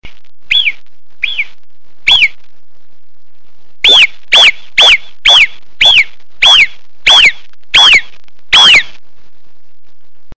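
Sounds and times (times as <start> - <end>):
marmot call: 0.5 - 2.4, 3.8 - 9.0.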